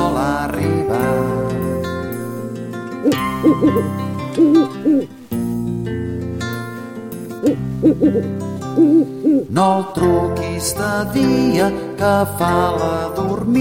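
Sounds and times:
sustained musical backing of a children's song: 0.0 - 13.6
owl-like hoots: 3.1 - 5.1, 7.8 - 9.5
speech: 3.5 - 5.2, 7.4 - 13.6.

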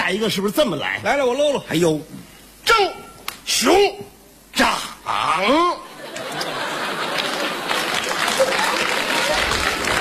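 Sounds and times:
speech: 0.1 - 2.2, 2.8 - 5.8
laughter: 5.9 - 9.4
crowd chatter: 6.1 - 9.9
audience applause: 6.7 - 9.9.

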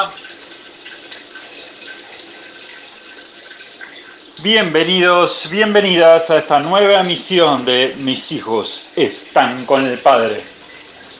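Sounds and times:
speech: 0.0 - 0.2, 4.4 - 10.5
water running in a shower in a latrine: 0.0 - 11.1.

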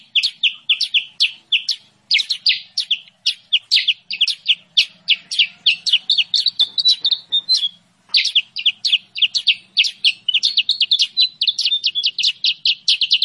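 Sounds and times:
sooty-headed bulbul sharp chirps and twittering trill: 0.0 - 13.2.

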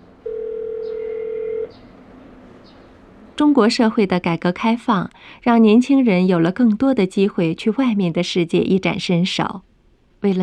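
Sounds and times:
low hiss: 0.0 - 10.4
steady telephone tone while dialing: 0.2 - 1.7
speech: 3.4 - 10.4.

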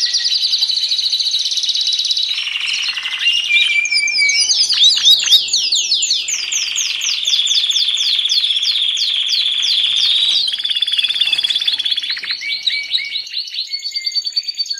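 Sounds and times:
canary singing actively: 0.0 - 14.7.

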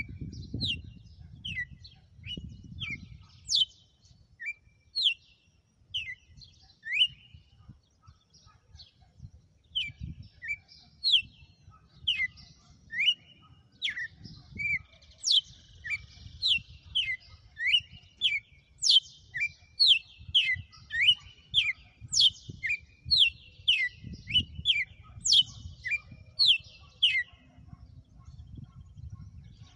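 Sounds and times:
female red-cowled cardinal whistled song: 4.4 - 5.2, 6.0 - 7.5, 9.8 - 27.5.

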